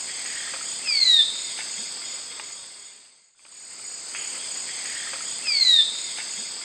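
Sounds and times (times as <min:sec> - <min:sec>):
Pipra filicauda call or song in South American eastern lowlands: 0:00.2 - 0:01.6, 0:04.7 - 0:06.2.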